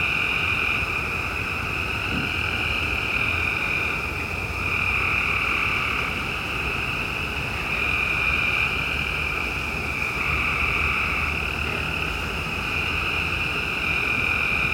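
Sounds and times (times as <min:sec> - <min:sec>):
constant low noise: 0:00.0 - 0:14.7
frog chorus trilling at night on the outskirts of a yard: 0:00.0 - 0:14.7.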